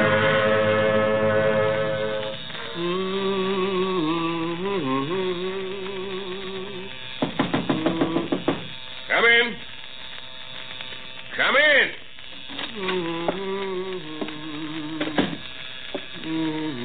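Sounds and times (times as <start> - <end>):
rising and falling tonal sweeps: 0.0 - 4.5
electric razor buzzing as a man shaves in his office: 0.0 - 16.8.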